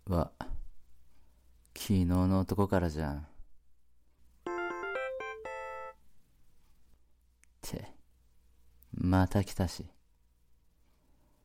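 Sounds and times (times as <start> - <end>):
speech: 0.1 - 0.4, 1.8 - 3.3, 9.0 - 10.0
LINE messaging app notification chime: 4.5 - 6.0.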